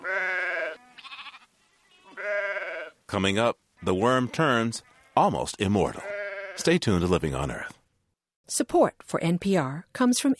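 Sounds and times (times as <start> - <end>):
Churro sheep bleating: 0.0 - 3.0, 3.8 - 6.8
speech: 3.1 - 7.8, 8.5 - 10.3.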